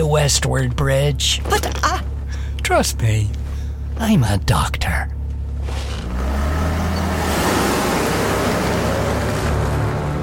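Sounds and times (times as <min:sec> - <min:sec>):
car engine drone driving at speed: 0:00.0 - 0:10.2
speech: 0:00.1 - 0:02.1, 0:02.7 - 0:03.4, 0:04.0 - 0:05.2
road and wind rush from a speeding car: 0:05.2 - 0:10.2.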